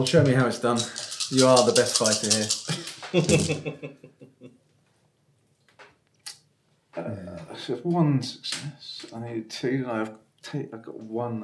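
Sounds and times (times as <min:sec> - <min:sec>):
handful of gear attribute and skill dice clattering onto a hard surface: 0:00.0 - 0:03.6
speech: 0:00.0 - 0:04.3, 0:07.0 - 0:11.4
laughter: 0:02.6 - 0:04.6.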